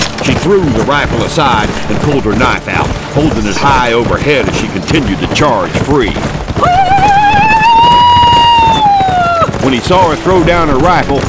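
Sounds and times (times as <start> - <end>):
galloping horse hoofbeats rumbling: 0.0 - 11.2
speech: 0.2 - 6.8, 9.6 - 11.2
horse whinnying while spurred into a charge: 6.5 - 10.7.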